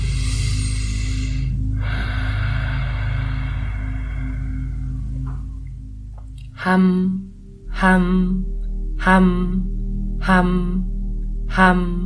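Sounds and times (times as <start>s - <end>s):
deep Ujjayi breathing through a narrowed throat: 0.0s - 6.0s
constant low hum: 0.0s - 12.0s
speech: 6.6s - 10.9s, 11.5s - 12.0s.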